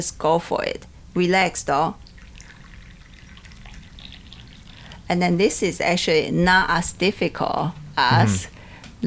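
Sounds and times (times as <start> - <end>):
speech: 0.0 - 2.0, 5.1 - 9.0
liquid pouring into a cup: 2.0 - 5.1.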